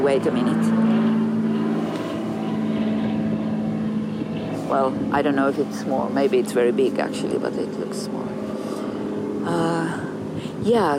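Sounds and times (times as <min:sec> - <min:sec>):
speech: 0:00.0 - 0:00.9, 0:04.7 - 0:08.4, 0:09.5 - 0:10.0, 0:10.6 - 0:10.9
small propeller airplane droning overhead: 0:00.0 - 0:10.9.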